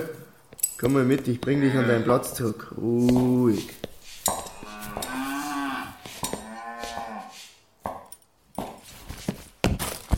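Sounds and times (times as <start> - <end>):
speech: 0.8 - 4.4
cattle mooing in a barn: 4.5 - 7.3.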